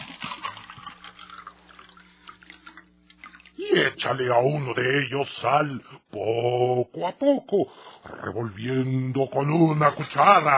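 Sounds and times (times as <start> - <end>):
water pouring into a glass: 0.0 - 3.7
speech: 3.6 - 10.5.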